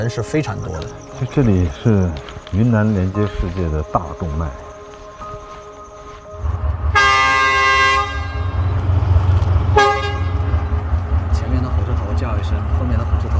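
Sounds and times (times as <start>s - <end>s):
speech: 0.0s - 4.7s
low diesel rumble of locomotives: 0.6s - 13.3s
locomotive train horn blasts: 6.4s - 11.2s.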